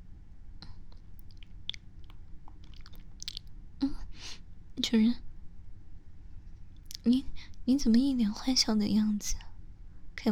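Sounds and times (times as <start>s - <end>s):
person chewing something sweet and strawberry-flavoured with wet mouth clicks: 0.9s - 3.6s, 6.8s - 7.1s
speech: 4.8s - 5.3s, 7.1s - 9.4s.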